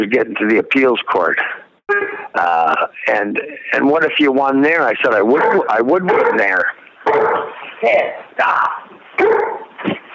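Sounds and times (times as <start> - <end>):
speech: 0.0 - 1.6, 2.3 - 10.0
dog barking in a room: 5.3 - 7.6, 9.2 - 9.7.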